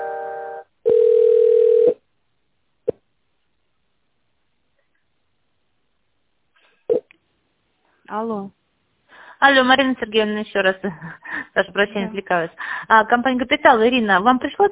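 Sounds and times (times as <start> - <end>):
multi-pitched telephone tone while a call is transferred: 0.8 - 2.0
speech: 8.1 - 8.6, 9.4 - 14.6.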